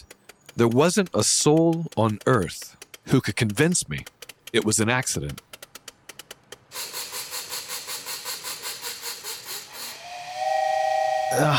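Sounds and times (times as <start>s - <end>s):
sharp clicks: 0.0s - 9.5s
speech: 0.6s - 5.5s, 11.3s - 11.5s
toy train steam whistle chuffing: 6.8s - 11.5s.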